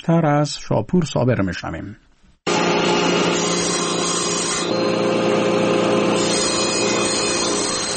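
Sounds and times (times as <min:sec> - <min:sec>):
speech: 0:00.0 - 0:02.0
electric saw cutting a wooden board: 0:02.5 - 0:07.9.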